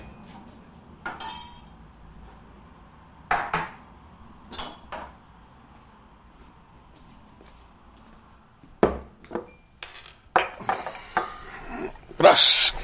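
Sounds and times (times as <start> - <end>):
glassware clinking as martini drinks with ice are prepared: 1.1 - 1.7, 9.5 - 12.1
speech: 12.2 - 12.8.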